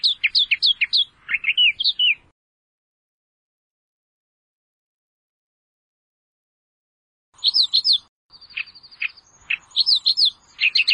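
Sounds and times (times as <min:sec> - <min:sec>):
Australian reed warbler song: 0:00.0 - 0:02.3, 0:07.4 - 0:10.9.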